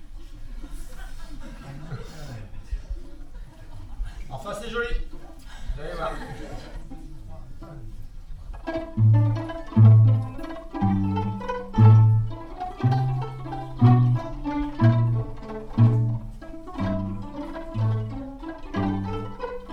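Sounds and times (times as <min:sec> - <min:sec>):
laughter: 0:00.5 - 0:04.3, 0:05.8 - 0:07.2
violins playing a Gaelic air: 0:07.6 - 0:19.7.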